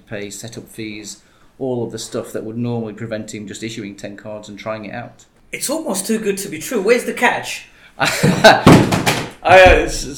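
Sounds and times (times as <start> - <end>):
speech: 0.1 - 10.1
laughter: 8.0 - 8.8
heavy thumps and knocks: 8.2 - 10.1.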